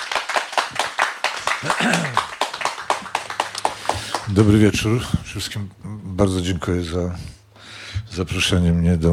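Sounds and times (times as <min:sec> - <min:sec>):
audience clapping to welcome a guest: 0:00.0 - 0:04.7
speech: 0:01.6 - 0:02.3, 0:04.3 - 0:07.4, 0:08.2 - 0:09.1.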